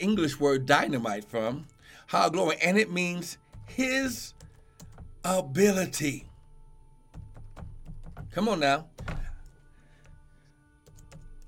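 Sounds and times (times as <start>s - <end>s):
speech: 0.0s - 4.4s, 5.2s - 6.3s, 8.3s - 9.3s
keys clattering on a computer keyboard: 4.3s - 5.2s, 7.2s - 8.4s, 10.8s - 11.4s.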